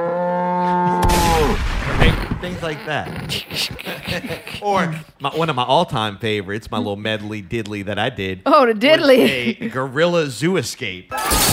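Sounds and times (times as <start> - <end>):
cow mooing: 0.0 - 1.1
speech: 1.5 - 11.3
laughter: 2.0 - 6.0, 9.0 - 9.9.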